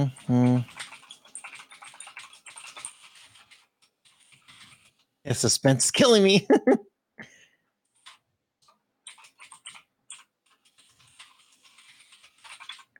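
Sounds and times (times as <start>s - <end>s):
speech: 0.0s - 0.9s, 5.3s - 6.9s
typing on a computer keyboard: 0.0s - 4.9s, 8.0s - 12.9s.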